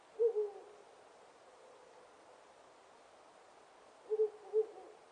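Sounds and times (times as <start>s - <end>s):
owl hooting: 0.1s - 0.9s, 4.1s - 5.0s.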